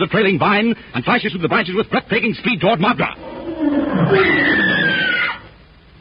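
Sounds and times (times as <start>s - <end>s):
speech: 0.0s - 4.8s
lion roaring while attacking a man: 3.0s - 5.5s.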